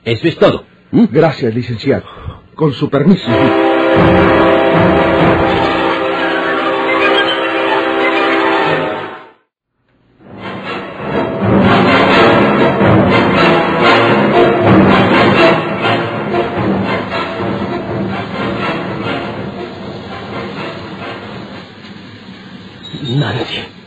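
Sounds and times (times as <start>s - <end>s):
speech: 0.0s - 5.7s
train horn blaring at a station: 3.2s - 9.5s, 10.2s - 21.6s.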